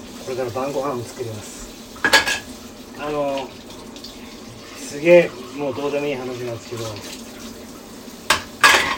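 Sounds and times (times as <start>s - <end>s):
speech: 0.3s - 1.6s, 3.0s - 3.6s, 4.9s - 7.2s
plates and utensils clattering in a sink while washing dishes: 2.0s - 2.5s, 8.2s - 8.9s.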